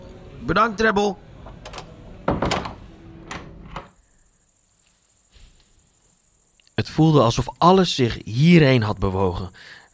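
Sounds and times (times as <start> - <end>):
speech: 0.4 - 1.3, 6.8 - 9.9
door opening and closing: 1.4 - 4.0.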